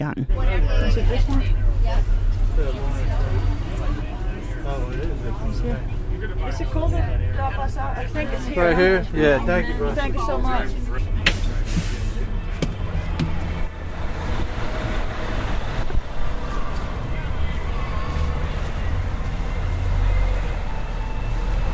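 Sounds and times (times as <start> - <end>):
speech: 0.0 - 3.4, 4.7 - 11.1
faint indistinct voices: 0.3 - 21.7
large diesel bus idling and pulling away at a muddy roadside: 0.3 - 21.7.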